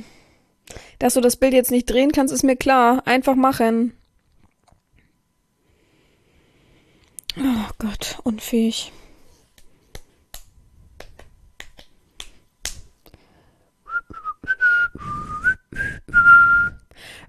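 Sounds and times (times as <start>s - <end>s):
speech: 1.0s - 4.0s, 7.4s - 9.0s
sharp finger snaps: 9.5s - 13.2s
person whistling a short wavering tune: 13.8s - 16.9s.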